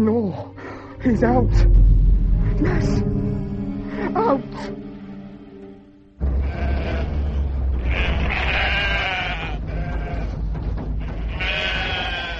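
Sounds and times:
speech: 0:00.0 - 0:01.9, 0:02.6 - 0:03.2, 0:04.2 - 0:04.8
sheep bleating: 0:06.3 - 0:10.4, 0:11.0 - 0:12.3.

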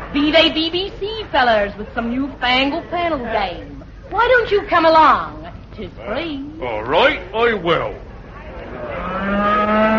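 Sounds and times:
speech: 0:00.1 - 0:08.0
cow mooing: 0:08.8 - 0:09.9.

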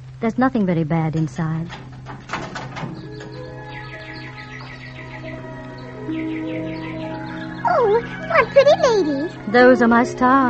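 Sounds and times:
sustained humming tonal backdrop: 0:00.0 - 0:10.4
speech: 0:00.2 - 0:01.8, 0:08.0 - 0:10.4
nightingales singing: 0:02.8 - 0:10.4.

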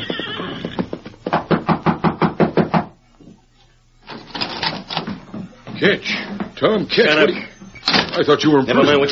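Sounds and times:
exhausted horse whinnying: 0:00.0 - 0:01.1
knocking on the wooden rear door of a cafe: 0:01.3 - 0:03.0
rustling and shuffling: 0:03.2 - 0:08.5
speech: 0:05.8 - 0:09.1.

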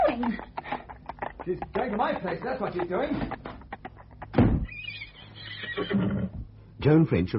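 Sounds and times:
speech: 0:01.5 - 0:03.5, 0:05.8 - 0:07.3
male horse in the stables neighing excitedly: 0:04.6 - 0:06.4.

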